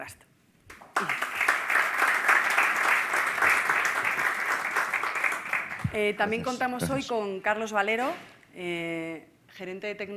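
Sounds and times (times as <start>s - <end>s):
speech: 0.0s - 0.3s, 1.0s - 1.2s, 5.9s - 10.1s
audience applause: 0.8s - 7.0s.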